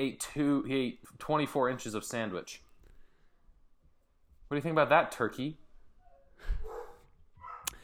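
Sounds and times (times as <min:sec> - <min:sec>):
speech: 0:00.0 - 0:02.7, 0:04.5 - 0:05.6
dog barking: 0:06.0 - 0:07.8.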